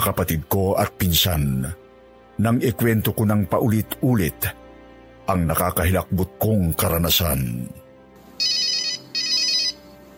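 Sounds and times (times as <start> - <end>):
speech: 0.0 - 1.8, 2.4 - 4.6, 5.3 - 7.8
cellphone ringtone trilling: 8.4 - 9.9.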